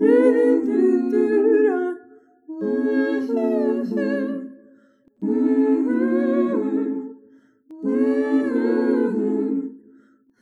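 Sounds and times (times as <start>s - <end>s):
soft soulful harmony mix: 0.0s - 10.1s.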